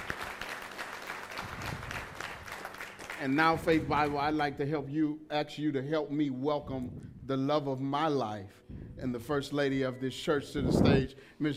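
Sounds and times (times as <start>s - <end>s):
large audience applause: 0.0s - 3.8s
speech: 3.2s - 11.5s.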